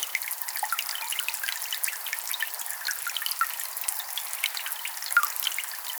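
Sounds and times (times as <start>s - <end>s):
dripping water ambience: 0.0s - 5.9s.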